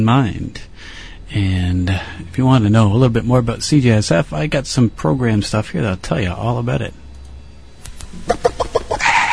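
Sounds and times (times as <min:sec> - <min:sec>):
speech: 0:00.0 - 0:07.0, 0:08.1 - 0:08.6
chicken clucking: 0:08.2 - 0:09.3.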